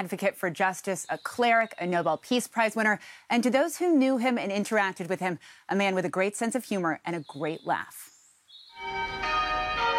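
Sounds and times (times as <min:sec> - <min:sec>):
speech: 0:00.0 - 0:08.1
church bells ringing in Cape Town: 0:08.8 - 0:09.9.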